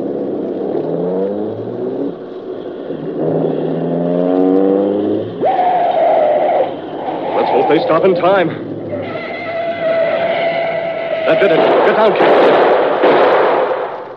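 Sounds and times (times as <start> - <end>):
car engine starting and accelerating: 0.0 - 11.2
speech: 7.7 - 8.7, 11.3 - 12.8.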